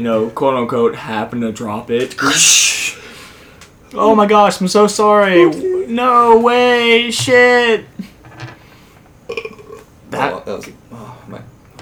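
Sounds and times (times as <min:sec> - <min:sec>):
speech: 0:00.0 - 0:03.0, 0:03.9 - 0:08.1, 0:10.5 - 0:11.4
forced burp: 0:02.2 - 0:03.2, 0:09.2 - 0:09.9.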